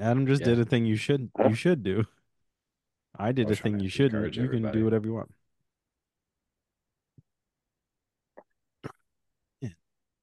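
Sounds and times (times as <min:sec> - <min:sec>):
speech: 0:00.0 - 0:02.2, 0:03.2 - 0:05.4
short abrupt throat sounds: 0:08.4 - 0:09.8
burp: 0:08.8 - 0:09.0.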